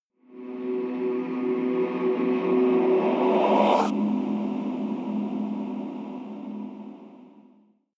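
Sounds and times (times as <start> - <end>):
evil choir transition: 0.2 - 7.8
risers: 0.3 - 7.1.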